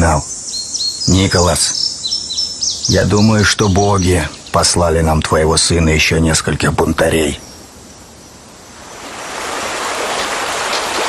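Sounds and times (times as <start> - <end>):
speech: 0.0 - 0.4, 1.0 - 1.8, 2.9 - 7.5
shallow river water flowing: 8.0 - 11.0.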